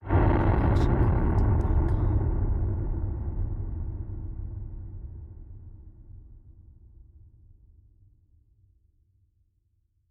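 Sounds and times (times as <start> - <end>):
distorted low rumble hit: 0.0 - 6.2.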